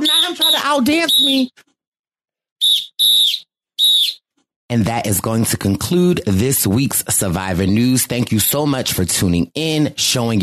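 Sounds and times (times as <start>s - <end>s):
shrill whistle blasts: 0.0s - 1.5s, 2.6s - 4.2s
speech: 0.7s - 1.7s, 4.7s - 10.4s.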